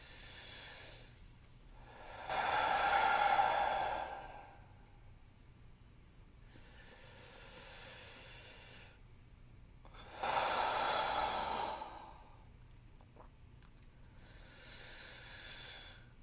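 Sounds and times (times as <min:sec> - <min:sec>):
person taking deep slow breaths on request: 0:00.0 - 0:01.2, 0:01.8 - 0:05.1, 0:06.4 - 0:09.0, 0:09.9 - 0:12.5, 0:14.0 - 0:16.2.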